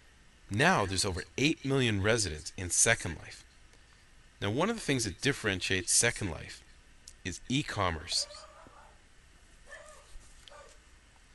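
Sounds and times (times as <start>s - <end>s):
quiet room hiss: 0.0s - 11.3s
speech: 0.5s - 3.5s, 4.4s - 6.6s, 7.2s - 8.4s
small dog barking faintly: 8.2s - 9.0s, 9.7s - 10.8s.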